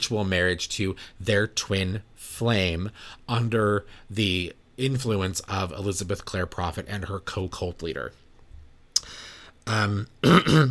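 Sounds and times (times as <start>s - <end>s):
speech: 0.0s - 8.2s, 9.0s - 10.6s
person clearing throat: 9.7s - 10.6s.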